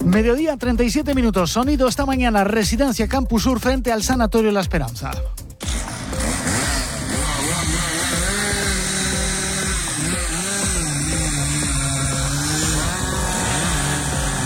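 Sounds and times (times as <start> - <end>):
speech: 0.1 - 5.4
chainsaw cutting through the trunk of a large fallen tree: 5.6 - 14.4.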